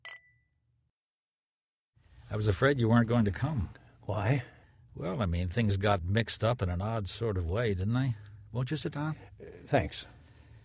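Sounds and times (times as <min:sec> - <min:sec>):
glasses clinking in a toast: 0:00.0 - 0:00.4
speech: 0:02.3 - 0:10.2.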